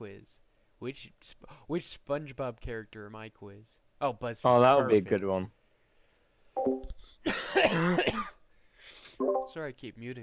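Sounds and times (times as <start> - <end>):
speech: 0.0 - 5.6, 6.6 - 8.3, 9.2 - 10.2
person coughing during a call: 7.2 - 8.4.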